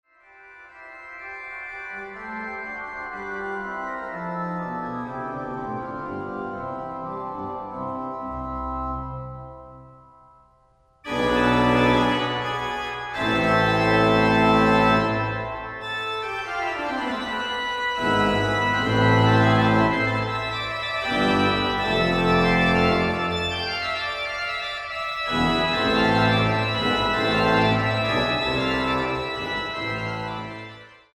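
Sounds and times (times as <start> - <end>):
organ: 0.2 - 10.4, 11.0 - 31.1.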